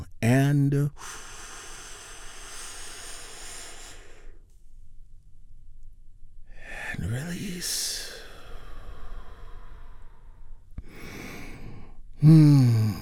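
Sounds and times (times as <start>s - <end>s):
person speaking: 0.0s - 1.0s, 6.7s - 8.3s
big deep breath during a guided relaxation exercise: 1.0s - 4.6s, 8.0s - 13.0s.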